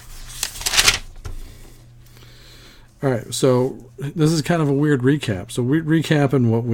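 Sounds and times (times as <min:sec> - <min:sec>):
paper notes rustling and shuffling: 0:00.0 - 0:01.4
speech: 0:03.0 - 0:06.7.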